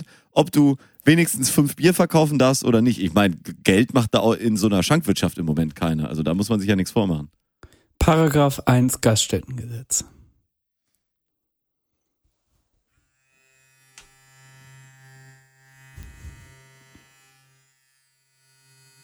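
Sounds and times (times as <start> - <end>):
speech: 0.4 - 7.4, 8.0 - 10.2
electric razor buzzing while shaving: 13.1 - 19.0.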